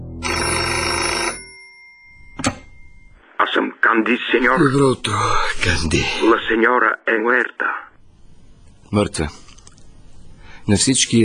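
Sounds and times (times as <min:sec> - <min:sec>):
telephone bell ringing: 0:00.2 - 0:03.2
speech: 0:03.9 - 0:07.9, 0:08.9 - 0:09.4, 0:10.7 - 0:11.2.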